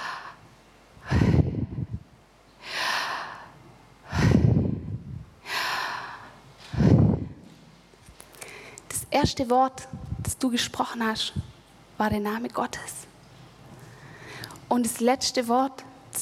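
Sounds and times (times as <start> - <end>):
slow deliberate breathing in and out: 0.0 - 2.0, 2.6 - 7.4
speech: 9.2 - 13.1, 14.7 - 16.2.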